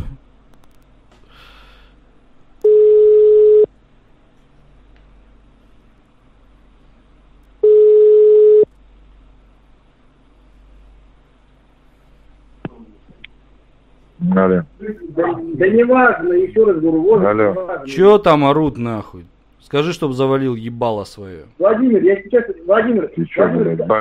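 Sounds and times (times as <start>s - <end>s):
telephone ringback tone of an unanswered call: 2.6s - 3.7s, 7.6s - 8.7s
speech: 15.6s - 23.9s.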